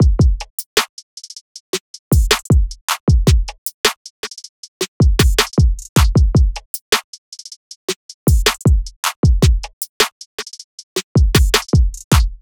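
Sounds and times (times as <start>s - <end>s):
drum loop: 0.0s - 0.6s, 2.1s - 3.6s, 5.0s - 6.6s, 8.3s - 9.8s, 11.1s - 12.4s.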